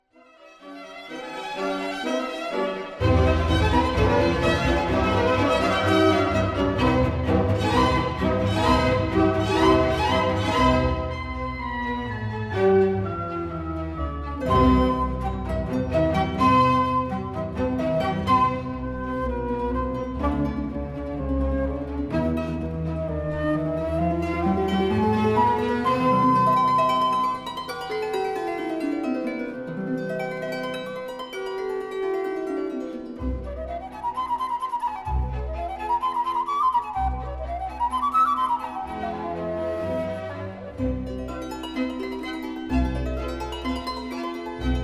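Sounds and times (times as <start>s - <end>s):
harp in a concerto in C major allegro: 0.2s - 44.8s
flute playing a concerto allegro: 2.0s - 27.6s, 33.2s - 42.0s.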